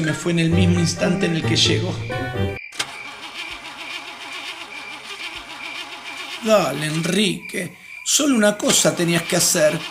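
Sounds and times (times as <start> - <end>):
speech: 0.0 - 2.6, 6.4 - 9.8
broken-down car engine cranking but not starting: 2.7 - 7.3, 8.6 - 9.8.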